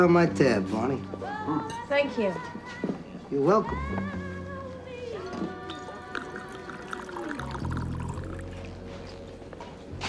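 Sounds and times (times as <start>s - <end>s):
speech: 0.0s - 4.3s
bourbon pouring into a glass at a bar: 5.8s - 8.8s.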